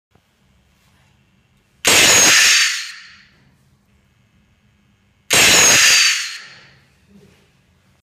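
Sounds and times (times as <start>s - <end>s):
turbo siren: 1.9s - 3.3s, 5.3s - 6.7s.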